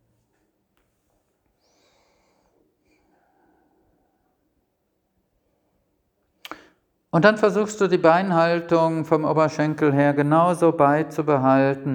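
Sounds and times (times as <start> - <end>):
slow deep breathing: 1.6 - 4.6
speech: 7.1 - 11.9.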